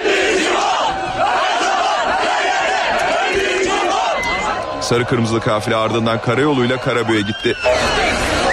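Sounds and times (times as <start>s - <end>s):
football fans chanting in unison in support of their team: 0.0s - 4.8s
speech: 4.9s - 8.4s.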